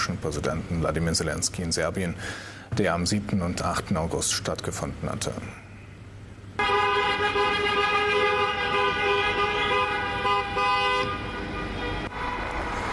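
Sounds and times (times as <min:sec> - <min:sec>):
speech: 0:00.0 - 0:05.6
convoy of cars and motorcycles engines rumbling: 0:00.0 - 0:12.9
road noise: 0:00.0 - 0:12.9
loud sustained horn blaring in a convoy: 0:06.6 - 0:12.9.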